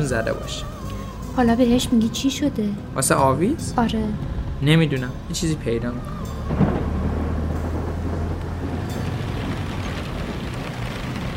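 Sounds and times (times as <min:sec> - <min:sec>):
speech: 0:00.1 - 0:06.6
heavy rain: 0:03.8 - 0:11.3
deep continuous rumble of thunder: 0:04.1 - 0:11.3.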